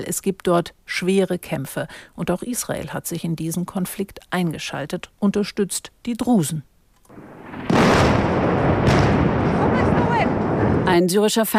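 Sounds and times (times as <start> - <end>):
speech: 0.0 - 7.3, 10.9 - 11.5
sharp blast: 7.2 - 10.9
loud explosion in Damascus: 7.2 - 11.0.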